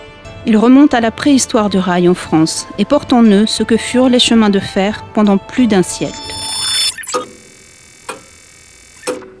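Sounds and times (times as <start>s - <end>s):
speech: 0.4s - 6.4s
brief bright whoosh: 5.8s - 7.1s
clock ticking: 6.3s - 8.4s, 9.0s - 9.3s.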